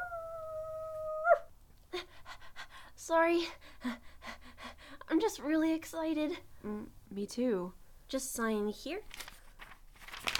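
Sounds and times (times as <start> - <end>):
dog howling: 0.0 - 1.5
speech: 3.1 - 4.1, 5.2 - 9.2.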